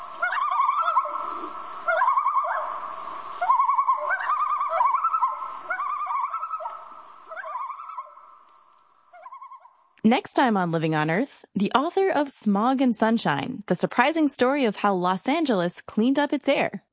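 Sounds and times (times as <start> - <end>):
common loon territorial warning tremolo call: 0.0 - 10.0
speech: 10.1 - 16.9.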